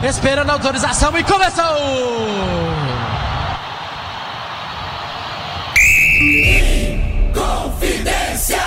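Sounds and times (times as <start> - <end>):
speech: 0.0 - 3.1
roar of a large stadium crowd: 0.0 - 8.6
referee's whistle blast starting a football match: 5.8 - 7.4.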